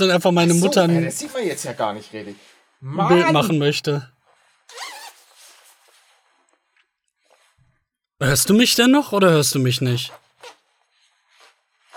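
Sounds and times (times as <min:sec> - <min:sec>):
person speaking loudly: 0:00.0 - 0:01.3, 0:02.8 - 0:03.9
speech: 0:00.0 - 0:04.1, 0:08.2 - 0:10.6
zipper being pulled down: 0:04.5 - 0:06.4, 0:10.1 - 0:11.9.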